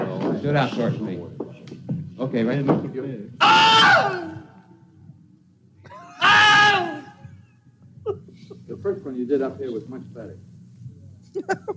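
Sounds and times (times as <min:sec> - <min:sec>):
speech: 0:00.4 - 0:01.4, 0:02.2 - 0:04.4, 0:08.7 - 0:10.5, 0:11.4 - 0:11.7
man screaming in pain: 0:03.4 - 0:04.4, 0:06.1 - 0:07.2.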